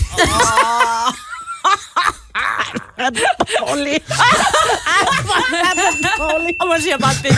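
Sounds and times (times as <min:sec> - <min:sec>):
people talking and laughing: 0:00.0 - 0:07.3
small bell ding: 0:05.7 - 0:07.3.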